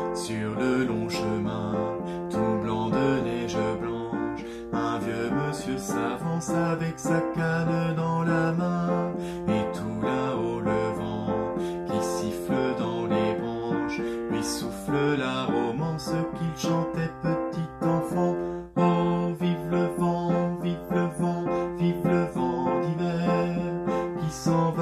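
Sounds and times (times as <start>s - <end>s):
alto and bass voices singing: 0.2s - 24.7s.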